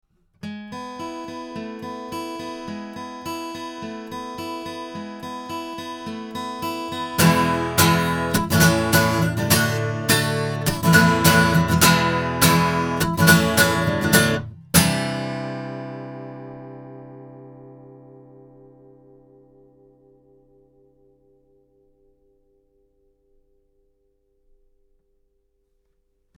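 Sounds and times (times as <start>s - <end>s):
guitar recorded with microphones: 0.0s - 23.7s.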